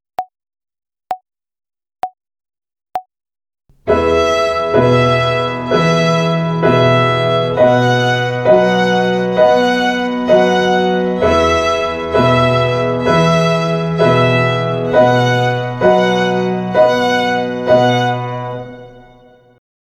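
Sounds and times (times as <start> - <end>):
violin finger exercise on the E string in quadruple time: 3.7 - 19.4.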